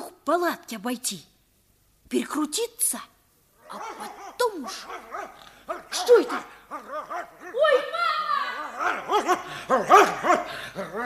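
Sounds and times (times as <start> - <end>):
speech: 0.3 - 1.3, 2.1 - 3.1, 3.7 - 11.0
large dog barking: 3.6 - 11.0.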